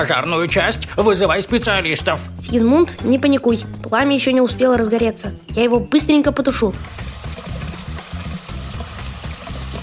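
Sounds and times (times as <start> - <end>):
speech: 0.0 - 7.2
tap water running into a container: 6.8 - 9.8.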